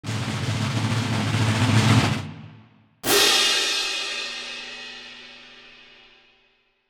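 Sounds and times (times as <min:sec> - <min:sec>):
drum rolls: 0:00.0 - 0:03.6
cymbal crash: 0:02.1 - 0:06.4.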